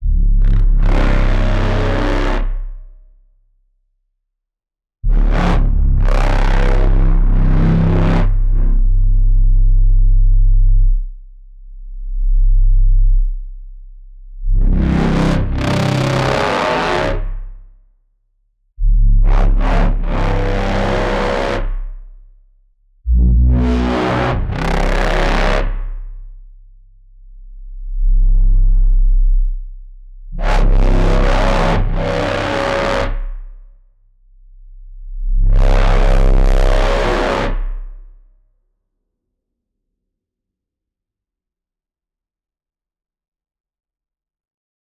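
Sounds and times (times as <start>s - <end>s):
doom dark evil bass: 0.0s - 3.3s, 5.0s - 17.8s, 18.8s - 38.3s.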